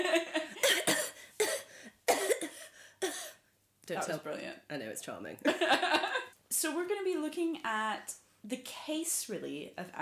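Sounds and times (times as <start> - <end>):
person putting on a theatrical chesty consumptive cough: 0.6 - 3.4
speech: 3.9 - 10.0.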